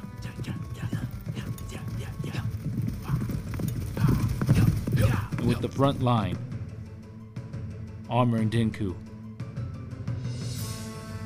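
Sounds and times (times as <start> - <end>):
horses galloping in a samurai charge: 0.0 - 6.6
speech: 5.5 - 6.5, 8.1 - 9.0.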